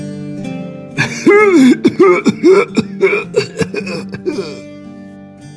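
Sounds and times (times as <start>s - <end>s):
severe coughing fit of a man lying in a canopied bed: 1.0s - 4.6s.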